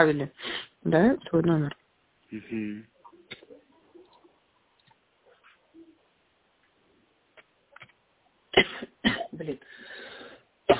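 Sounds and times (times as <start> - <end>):
speech: 0.0 - 2.9, 9.4 - 9.9
single sharp loud cough: 8.6 - 9.4.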